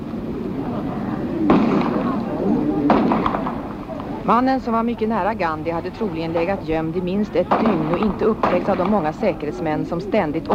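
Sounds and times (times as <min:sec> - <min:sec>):
indistinct voices: 0:00.0 - 0:10.5
steady rumble of crowd noise: 0:00.0 - 0:10.5
sharp gunshots fired by a man hidden in a tree at a memorial ceremony: 0:01.5 - 0:02.2, 0:02.8 - 0:03.8, 0:07.5 - 0:09.0
speech: 0:04.3 - 0:10.5.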